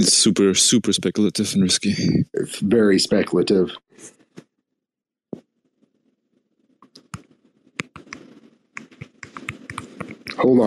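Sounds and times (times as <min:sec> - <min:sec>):
speech: 0:00.0 - 0:04.2, 0:10.4 - 0:10.6
typing direct messages on a keyboard: 0:06.8 - 0:10.4.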